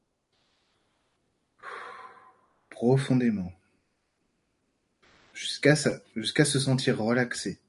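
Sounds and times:
deep breath inhaled through the nose and exhaled through the mouth: 1.6s - 2.7s
speech: 2.8s - 3.6s, 5.4s - 7.6s.

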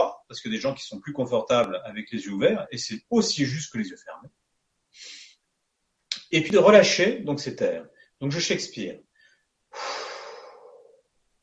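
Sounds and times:
speech: 0.3s - 4.4s, 6.3s - 9.1s
person breathing in slowly during a guided meditation: 5.0s - 5.4s, 9.1s - 11.1s.

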